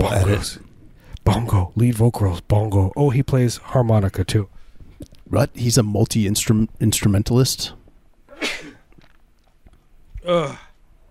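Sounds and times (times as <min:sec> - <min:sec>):
speech: 0:00.0 - 0:07.8, 0:10.2 - 0:10.6
quiet room noise: 0:00.0 - 0:11.0
person sneezing: 0:08.3 - 0:08.8.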